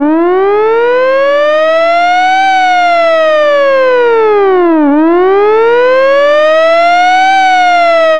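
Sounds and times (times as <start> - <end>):
vintage hi-lo siren: 0.0 - 8.1.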